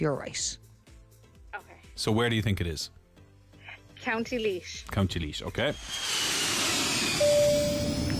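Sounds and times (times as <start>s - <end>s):
speech: 0.0s - 0.6s, 1.5s - 3.0s, 4.0s - 6.4s
airplane cruising at 12,500 feet over the heart of Ireland: 6.7s - 8.1s.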